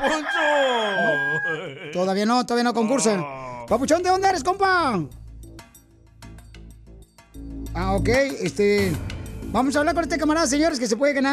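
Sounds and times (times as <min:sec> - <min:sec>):
rooster crowing cock-a-doodle-doo: 0:00.0 - 0:01.9
laughter: 0:00.0 - 0:03.7
speech: 0:00.0 - 0:05.2, 0:07.8 - 0:11.3.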